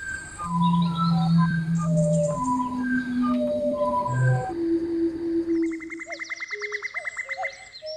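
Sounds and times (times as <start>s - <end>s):
bird call recordings layered on a sampler: 0.0s - 7.9s
rapid buzzy trill: 0.4s - 6.5s.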